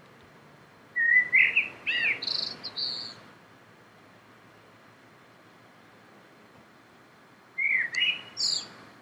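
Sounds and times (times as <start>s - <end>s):
quiet background hiss: 0.0s - 9.0s
Common blackbird fluty warbling song: 1.0s - 3.2s, 7.6s - 8.8s.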